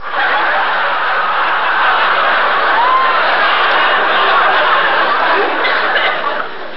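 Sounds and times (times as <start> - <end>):
crowd laughing: 0.0 - 6.7.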